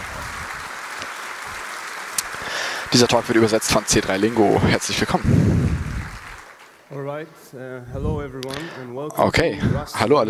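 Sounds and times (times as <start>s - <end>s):
audience applause at a technical conference talk: 0.0s - 6.9s
speech: 2.9s - 5.9s, 6.9s - 10.2s.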